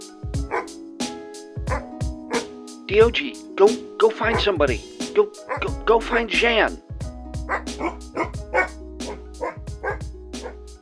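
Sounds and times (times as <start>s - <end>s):
dog barking: 0.4s - 0.8s, 1.7s - 2.5s, 4.3s - 4.8s, 5.4s - 5.8s, 7.5s - 10.6s
speech: 2.9s - 6.9s, 7.5s - 8.5s.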